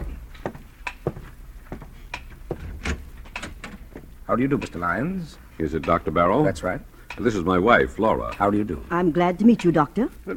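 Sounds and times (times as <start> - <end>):
front door being opened with clicks, knocks and latch rattles: 0.0 - 5.1
speech: 4.3 - 10.3.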